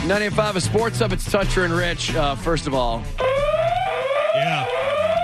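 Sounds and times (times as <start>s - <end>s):
speech: 0.1s - 3.3s
electronic alarm tone with rising pitch: 3.2s - 5.2s.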